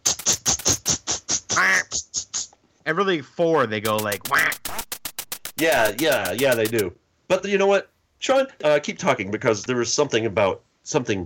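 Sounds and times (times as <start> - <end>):
duck quacking: 1.5 - 2.0, 3.9 - 4.7
speech: 2.8 - 4.6, 5.6 - 11.2.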